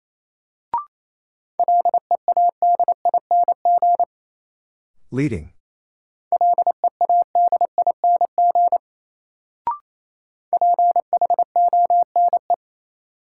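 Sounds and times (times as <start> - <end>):
rapid Morse code beeps in a steady mid-pitched tone: 1.6 - 4.1, 6.4 - 8.8, 10.5 - 12.6
speech: 5.1 - 5.6.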